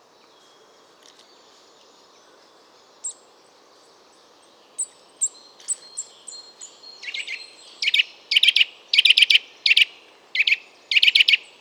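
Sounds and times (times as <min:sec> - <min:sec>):
Eurasian nuthatch calling: 0:07.0 - 0:11.5.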